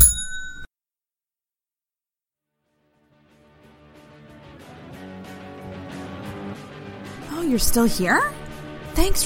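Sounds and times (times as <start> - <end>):
single bright bell strike: 0.0 - 0.7
music: 2.5 - 9.2
speech: 7.5 - 8.4, 9.0 - 9.2.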